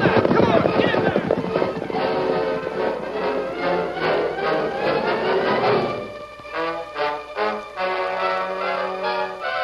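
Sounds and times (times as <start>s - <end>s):
galloping hoofbeats of two riders' horses on a trail: 0.0s - 6.6s
dramatic orchestral music with sustained brass and strings: 0.8s - 9.6s.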